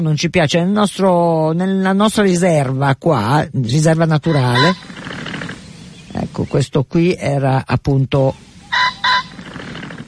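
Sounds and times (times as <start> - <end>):
speech: 0.0 - 4.9, 6.1 - 8.4
faint noise: 0.0 - 10.0
pheasant calling: 3.8 - 6.7, 8.3 - 10.0.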